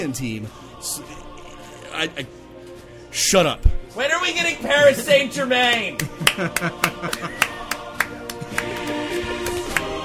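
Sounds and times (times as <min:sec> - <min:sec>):
speech: 0:00.0 - 0:01.3, 0:01.9 - 0:02.4, 0:03.1 - 0:07.5
laughter: 0:04.4 - 0:08.7
single person clapping hands: 0:05.7 - 0:10.0.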